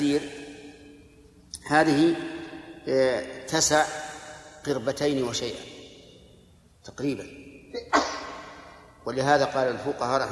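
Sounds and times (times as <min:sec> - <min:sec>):
speech: 0:00.0 - 0:00.4, 0:01.7 - 0:05.7, 0:06.8 - 0:07.9, 0:09.0 - 0:10.3
person sneezing: 0:07.8 - 0:08.6.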